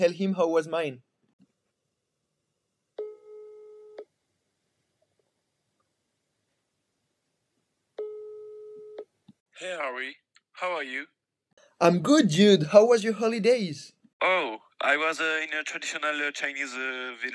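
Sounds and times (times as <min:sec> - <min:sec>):
speech: 0:00.0 - 0:01.1, 0:09.6 - 0:11.2, 0:11.8 - 0:17.3
telephone ringing tone through the handset: 0:08.0 - 0:09.0.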